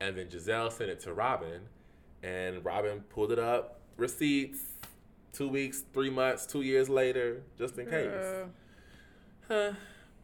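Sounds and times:
speech: 0.0 - 8.6, 9.5 - 10.0
person yawning: 9.5 - 10.0.

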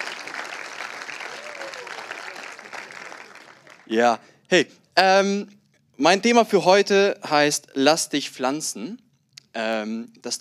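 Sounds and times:
audience applause: 0.0 - 4.1
speech: 3.9 - 9.0, 9.6 - 10.4.

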